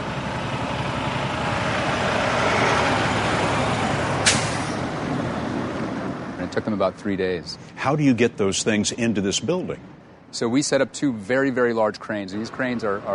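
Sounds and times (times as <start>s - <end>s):
heavy semi trucks rumbling along a road: 0.0s - 13.1s
semi truck air brake hiss: 4.2s - 4.8s
speech: 6.6s - 13.1s.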